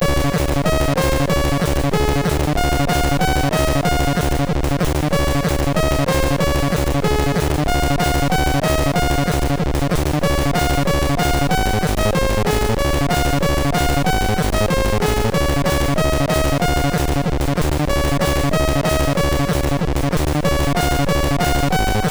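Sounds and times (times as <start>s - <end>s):
techno carol played on MOS6581R3 sound chip: 0.0s - 22.0s.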